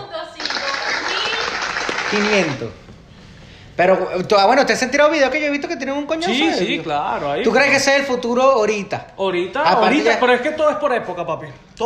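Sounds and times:
crowd applause of many hands clapping: 0:00.4 - 0:02.8
speech: 0:02.1 - 0:02.9, 0:03.8 - 0:11.8.

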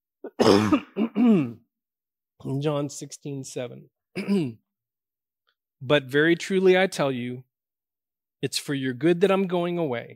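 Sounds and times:
person coughing: 0:00.2 - 0:01.6, 0:04.2 - 0:04.7
person clearing throat: 0:00.2 - 0:01.7, 0:04.2 - 0:04.7
speech: 0:00.5 - 0:01.6, 0:02.4 - 0:04.6, 0:05.8 - 0:07.5, 0:08.4 - 0:10.1.

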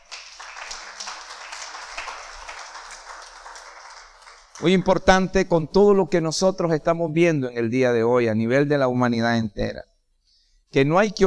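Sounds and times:
church audience applauding during a sermon: 0:00.0 - 0:05.0
speech: 0:04.6 - 0:09.9, 0:10.7 - 0:11.2.

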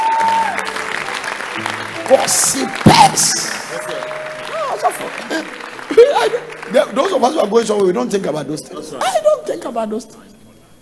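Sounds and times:
church congregation clapping during a sermon: 0:00.0 - 0:08.5
speech: 0:01.6 - 0:04.0, 0:05.0 - 0:10.3.

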